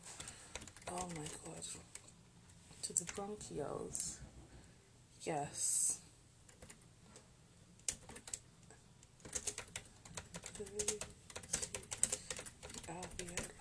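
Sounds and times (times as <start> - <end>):
typing on a computer keyboard: 0.2 - 2.1, 6.5 - 6.8, 7.8 - 8.4, 9.2 - 13.6
speech: 0.9 - 2.0, 2.9 - 4.4, 5.2 - 5.9, 10.6 - 11.2, 12.9 - 13.6.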